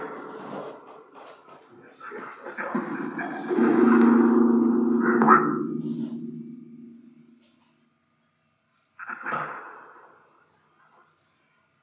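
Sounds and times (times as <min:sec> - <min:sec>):
resonant knocks: 0:02.6 - 0:07.4.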